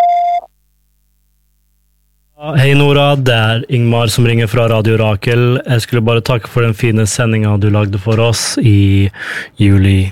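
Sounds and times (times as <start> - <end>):
voicemail beep after an answering-machine greeting: 0.0 - 0.5
speech: 2.4 - 10.1.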